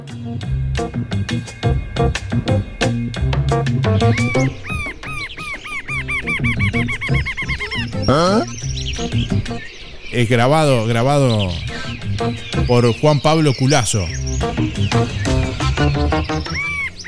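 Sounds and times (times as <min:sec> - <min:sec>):
speech: 0:00.2 - 0:05.1, 0:06.3 - 0:16.7
rufous-capped antshrike calling: 0:03.9 - 0:17.0.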